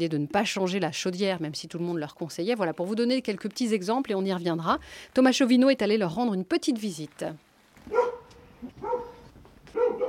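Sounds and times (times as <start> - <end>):
speech: 0.0 - 8.0
agitated dog barking: 7.9 - 10.0.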